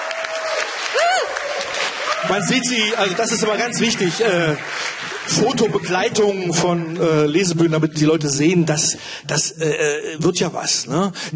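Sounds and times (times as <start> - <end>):
audience applause at a literary reading-stage event: 0.0 - 7.6
speech: 2.2 - 11.3.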